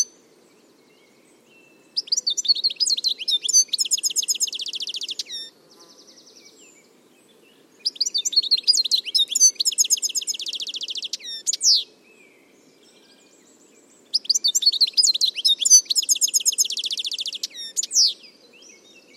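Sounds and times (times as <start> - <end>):
bird singing fast high twittering phrases of chirps and rattling trills: 2.0 - 5.5, 7.8 - 11.9, 14.1 - 18.8.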